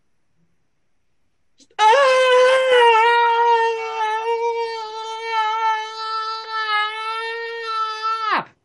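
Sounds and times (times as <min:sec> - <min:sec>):
voice imitating a long loud high-pitched scream: 0:01.6 - 0:08.6.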